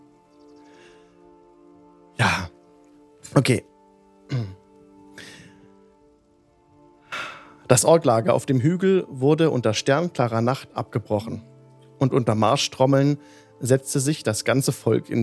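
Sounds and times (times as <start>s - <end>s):
light rain pattering: 0.0s - 15.2s
speech: 3.3s - 3.7s, 7.7s - 15.2s
person throat-clearing or coughing: 4.3s - 4.6s.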